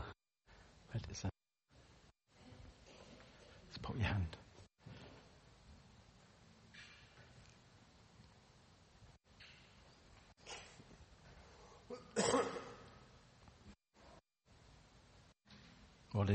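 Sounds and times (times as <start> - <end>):
speech: 0.9 - 1.4
person sneezing: 10.4 - 10.8, 11.8 - 13.0.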